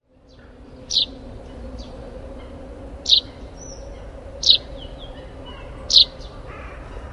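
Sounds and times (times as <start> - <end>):
russet sparrow giving sharp high chirps: 0.8 - 1.2, 3.0 - 6.5.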